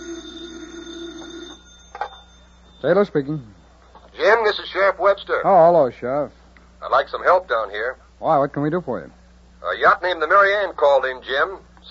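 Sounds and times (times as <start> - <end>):
telephone bell ringing at a desk in a field office: 0.0 - 3.7
speech: 2.8 - 3.6, 4.3 - 11.8.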